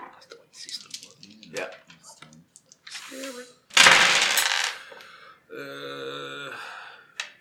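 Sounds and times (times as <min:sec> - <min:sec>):
stress dice rattling across a hard tabletop: 0:00.6 - 0:05.0
speech: 0:01.5 - 0:01.8.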